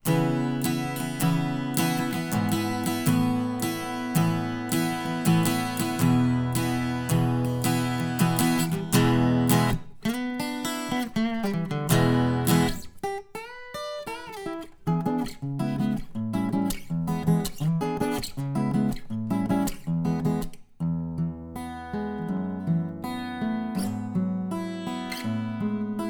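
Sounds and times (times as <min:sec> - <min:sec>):
alt guitar: 0:00.0 - 0:26.0.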